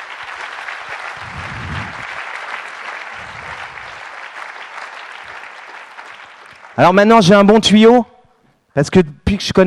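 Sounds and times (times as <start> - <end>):
applause from a large audience: 0.0 - 7.0
speech: 6.8 - 8.1, 8.8 - 9.6.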